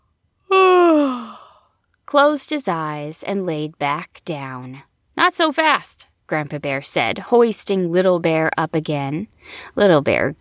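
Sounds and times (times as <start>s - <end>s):
human voice performing a drawn-out yawn of a sleepy bear cub: 0.5s - 1.6s
speech: 2.1s - 10.3s.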